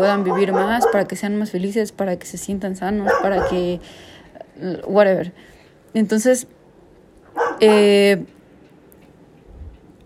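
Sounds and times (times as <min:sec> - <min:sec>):
speech: 0:00.0 - 0:06.6, 0:07.6 - 0:08.4
dog barking: 0:00.2 - 0:01.2, 0:03.0 - 0:03.7, 0:07.3 - 0:07.9.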